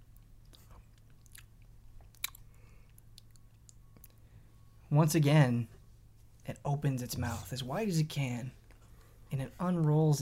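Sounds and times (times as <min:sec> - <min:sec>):
low steady hum: 0:00.0 - 0:10.2
giant creature chewing with wet smacking sounds: 0:00.5 - 0:04.2
speech: 0:04.9 - 0:05.8, 0:06.5 - 0:08.6, 0:09.3 - 0:10.2.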